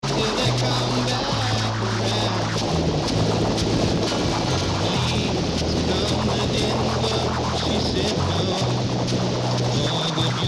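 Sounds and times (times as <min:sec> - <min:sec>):
AM radio reception at 1600kHz on ATS 405 receiver: 0:00.0 - 0:10.4.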